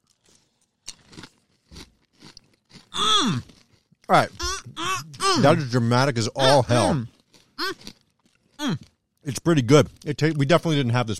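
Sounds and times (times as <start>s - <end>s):
crunchy bites into honeycrisp apple pie granola: 0.0s - 4.4s, 6.8s - 9.0s
speech: 4.1s - 4.4s, 5.0s - 8.0s, 8.6s - 11.1s.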